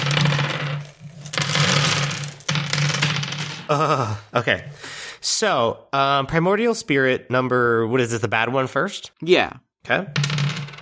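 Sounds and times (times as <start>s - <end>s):
dice rattling and clattering in a shaken cloth bag: 0.0s - 3.0s
speech: 3.7s - 10.4s.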